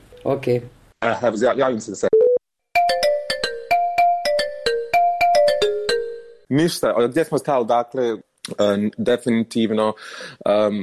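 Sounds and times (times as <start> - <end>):
speech: 0.2 - 2.1, 6.5 - 10.8
incoming-call ringtone on a phone: 2.2 - 6.5.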